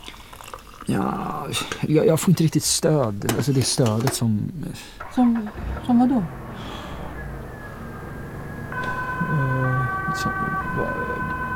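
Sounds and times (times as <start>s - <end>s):
speech: 0.9s - 6.7s, 10.2s - 11.5s
low rumbling background: 5.3s - 11.5s
ambulance siren wailing with two-tone alternating notes: 5.5s - 11.5s.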